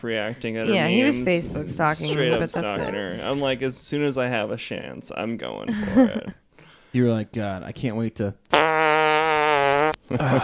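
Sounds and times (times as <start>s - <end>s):
speech: 0.0s - 8.7s, 10.1s - 10.4s
laughter: 1.8s - 3.6s, 5.7s - 6.4s, 10.1s - 10.4s
buzzy fart sound effect played from a sound pad: 8.5s - 10.1s.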